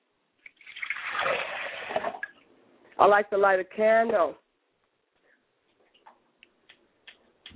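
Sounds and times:
water pouring into a glass as a libation: 0.5 - 2.4
speech: 3.0 - 4.4.

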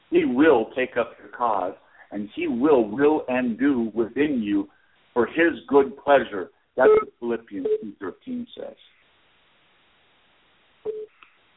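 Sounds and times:
speech: 0.4 - 9.0
phone signal beep announcing an incoming call: 6.8 - 7.9, 10.9 - 11.2
faint click: 11.2 - 11.4.

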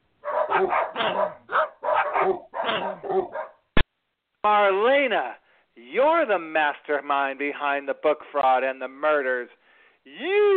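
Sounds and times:
dogs barking: 0.2 - 3.7
speech: 0.6 - 1.4, 5.0 - 10.5.

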